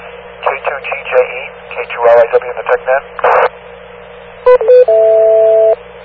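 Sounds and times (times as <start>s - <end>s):
faint hum: 0.0s - 6.0s
steady radio hiss: 0.4s - 3.6s
speech: 0.8s - 3.6s
electronic beep tones on radio: 4.5s - 5.8s.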